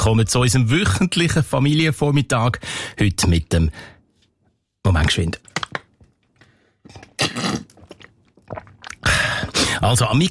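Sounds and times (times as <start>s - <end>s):
speech: 0.0s - 3.9s, 4.8s - 5.5s, 9.8s - 10.3s
person sipping and swallowing a drink during a hot-weather drinking break: 5.6s - 9.8s.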